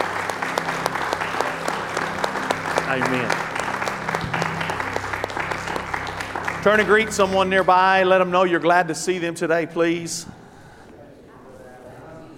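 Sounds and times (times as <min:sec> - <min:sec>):
audience clapping hands in praise and worship: 0:00.0 - 0:08.3
speech: 0:02.9 - 0:03.5, 0:06.6 - 0:10.4.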